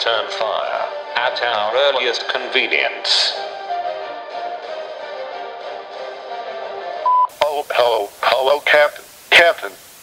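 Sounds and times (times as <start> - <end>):
speech: 0.0 - 3.6, 7.8 - 9.9
answering machine beep: 7.0 - 7.4.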